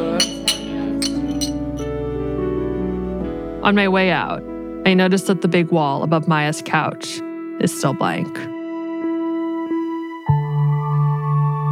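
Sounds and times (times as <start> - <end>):
glasses clinking in a tequila toast: 0.0 - 2.0
steady music: 0.0 - 11.7
speech: 3.6 - 8.5.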